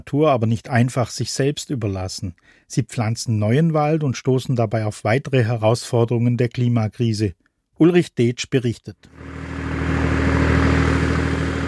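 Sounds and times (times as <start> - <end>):
speech: 0.0 - 9.4
vehicle with 500-litre tank driving up steep hairpin bends: 9.1 - 11.6.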